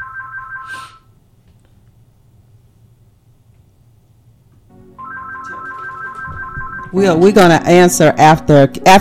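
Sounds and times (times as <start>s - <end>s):
telephone ringing with an incoming call: 0.0s - 0.8s, 4.9s - 7.3s
speech: 6.9s - 8.9s.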